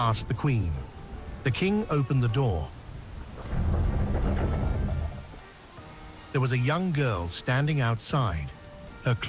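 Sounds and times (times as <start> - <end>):
speech: 0.0 - 2.8, 6.3 - 9.2
deep loud thunder rumbling: 0.0 - 6.1
steady rain falling outside a castle at night: 0.0 - 9.2.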